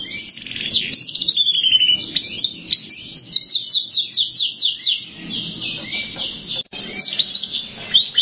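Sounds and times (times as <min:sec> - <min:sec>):
Canary singing high sweeping notes and chirps: 0:00.0 - 0:08.2.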